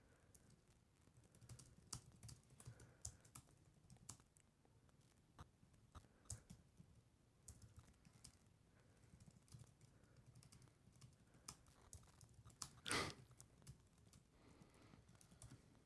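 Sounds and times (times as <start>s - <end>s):
typing on a computer keyboard: 0.3s - 4.3s, 6.0s - 14.3s, 15.1s - 15.6s.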